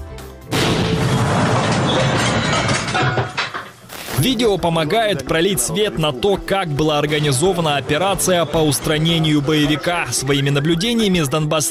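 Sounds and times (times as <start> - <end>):
loud explosion at a café: 0.5 - 3.0
speech: 4.2 - 11.6.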